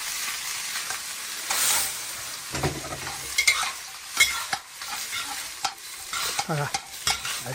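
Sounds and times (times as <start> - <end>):
dried shrimp and cut cattail shoots sizzling in a wok: 0.0 - 7.5
scraping and clattering of stirring in a wok: 2.8 - 7.5
speech: 6.5 - 7.5.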